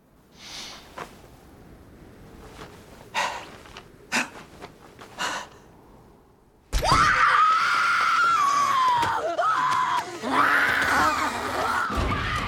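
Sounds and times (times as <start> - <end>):
witches screaming shrilly: 6.8 - 12.4.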